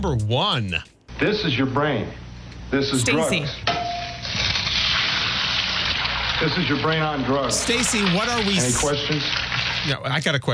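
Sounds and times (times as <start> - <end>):
speech: 0.0 - 3.8, 6.4 - 10.5
egg frying in a hot pan: 3.6 - 10.4.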